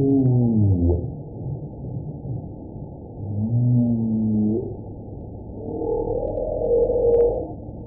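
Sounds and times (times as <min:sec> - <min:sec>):
humpback whale song: 0:00.0 - 0:07.8
low underwater rumble: 0:00.0 - 0:07.8.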